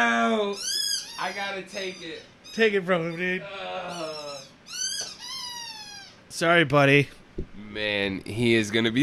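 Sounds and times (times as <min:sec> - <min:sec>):
puppy making high-pitched whines: 0:00.0 - 0:06.3
speech: 0:01.3 - 0:04.2, 0:06.3 - 0:09.0.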